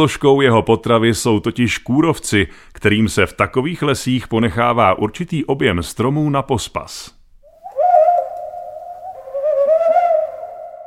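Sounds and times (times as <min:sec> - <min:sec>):
speech: 0:00.0 - 0:07.2
Ural owl hooting wail: 0:07.5 - 0:10.8.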